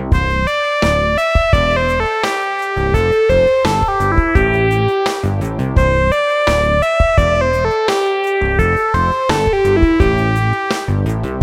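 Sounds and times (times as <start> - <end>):
simple triplet melodies in C major: 0.2 - 11.3.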